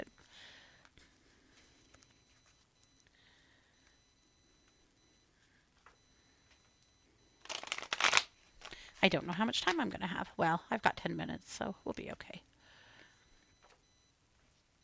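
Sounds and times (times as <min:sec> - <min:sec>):
tarot cards being shuffled: 0:07.4 - 0:08.8
speech: 0:09.0 - 0:12.5.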